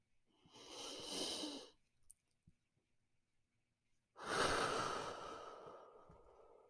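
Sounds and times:
person breathing in and out slowly: 0.3 - 1.8, 4.2 - 6.6.

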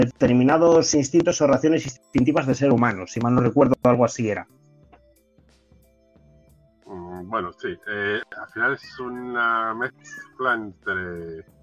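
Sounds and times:
speech: 0.0 - 4.6, 7.2 - 11.6
cat meowing faintly: 9.8 - 10.5.

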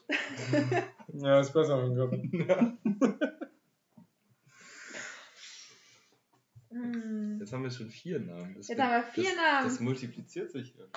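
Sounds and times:
laughter: 0.0 - 1.1, 2.0 - 3.6
speech: 0.5 - 3.2, 7.5 - 10.9
group breathing in during breathing exercise: 4.5 - 6.1.

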